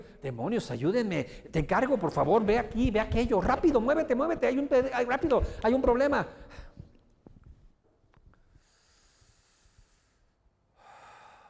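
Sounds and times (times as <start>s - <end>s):
speech: 0.2s - 6.7s
deep drawn-out breath: 5.4s - 5.6s, 6.3s - 7.0s, 8.4s - 11.4s.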